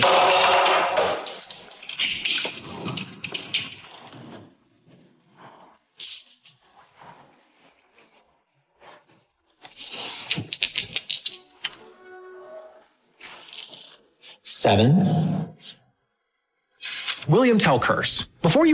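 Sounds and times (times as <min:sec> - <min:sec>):
two dice rattling and clattering across a hard surface: 0:00.1 - 0:03.5, 0:09.7 - 0:11.5
speech: 0:14.6 - 0:15.4, 0:17.3 - 0:18.7.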